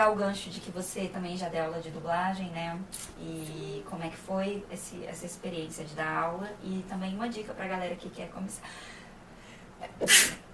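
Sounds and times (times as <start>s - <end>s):
speech: 0.0s - 9.0s, 9.8s - 10.4s
person sneezing from allergies: 9.8s - 10.4s.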